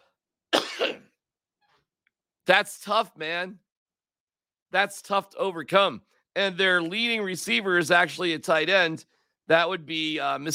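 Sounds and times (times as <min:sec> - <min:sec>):
harsh throaty cough: 0:00.6 - 0:01.2
speech: 0:00.8 - 0:01.0, 0:02.5 - 0:03.6, 0:04.7 - 0:10.5.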